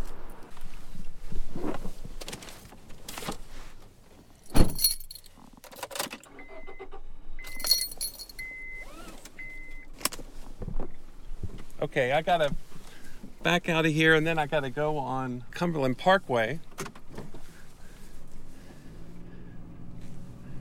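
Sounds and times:
rustling: 0:01.7 - 0:05.3, 0:07.5 - 0:08.4
keys jangling: 0:04.4 - 0:06.0, 0:07.5 - 0:08.5
speech: 0:11.9 - 0:12.6, 0:13.4 - 0:16.7.

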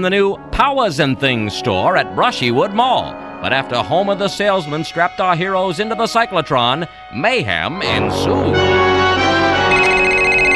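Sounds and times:
speech: 0:00.0 - 0:09.2
cell phone ringing with a bright electronic ringtone: 0:09.4 - 0:10.5.

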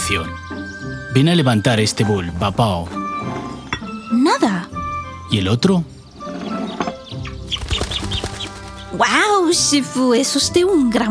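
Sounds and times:
bright bird chirps: 0:00.0 - 0:01.7, 0:03.0 - 0:09.3
speech: 0:00.1 - 0:03.0, 0:04.2 - 0:04.7, 0:05.3 - 0:05.9, 0:08.9 - 0:11.0
bird wings flapping as a bird appears in a magic trick: 0:07.4 - 0:09.3.

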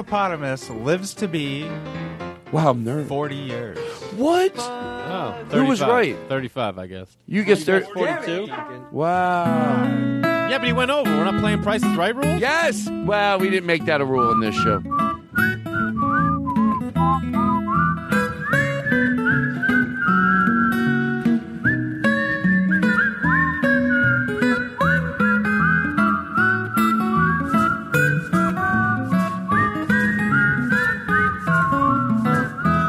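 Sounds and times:
speech: 0:00.0 - 0:15.6
person whistling a tune: 0:14.0 - 0:32.8.

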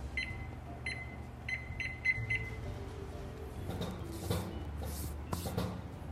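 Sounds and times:
short bright electronic beeps of a kitchen timer being set: 0:00.2 - 0:02.6
soft clattering and rustling handling noise: 0:03.6 - 0:06.0.

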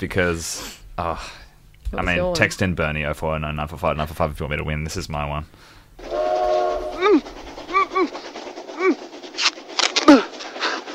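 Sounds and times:
speech: 0:00.0 - 0:06.2
person imitating an approaching train on railway tracks: 0:06.0 - 0:10.9.

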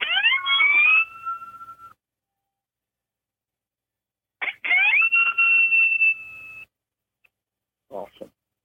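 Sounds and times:
siren imitation blown on an open-reed predator call: 0:00.0 - 0:02.0, 0:04.4 - 0:06.7.

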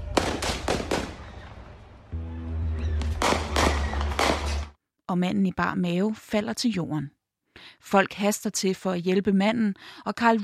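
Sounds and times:
gunshots fired at a parking lot in front of an auto repair shop: 0:00.0 - 0:01.7, 0:03.0 - 0:04.7
speech: 0:05.1 - 0:10.4.

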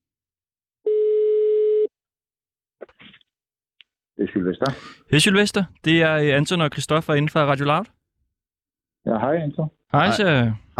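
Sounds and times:
telephone ringing tone: 0:00.8 - 0:01.9
speech: 0:04.2 - 0:08.0, 0:09.0 - 0:10.7.

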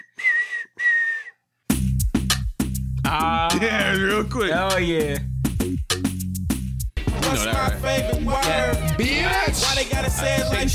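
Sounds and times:
whistled notes from a song: 0:00.0 - 0:01.5
loud punchy music with heavy low-end hits: 0:01.7 - 0:10.7
speech: 0:03.1 - 0:05.3, 0:07.3 - 0:10.7.

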